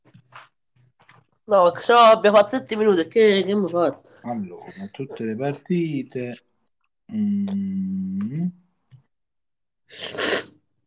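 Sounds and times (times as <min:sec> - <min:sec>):
speech: 0:01.5 - 0:06.5, 0:07.1 - 0:08.6, 0:09.9 - 0:10.3
person sneezing from a head cold: 0:09.9 - 0:10.6.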